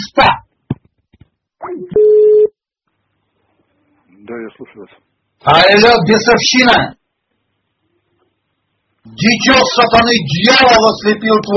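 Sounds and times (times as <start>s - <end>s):
speech: 0.0s - 0.4s, 4.3s - 7.0s, 9.0s - 11.5s
warbling sweeping telephone tone from a call to a mobile phone: 1.8s - 2.5s
steady mid-pitched telephone tone from a call to a mobile phone: 1.9s - 2.6s.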